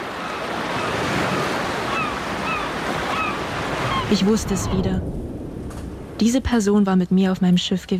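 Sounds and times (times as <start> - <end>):
distant ocean surf: 0.0 - 6.9
faint seagull cries: 1.8 - 4.1
speech: 4.1 - 5.2, 6.2 - 7.9.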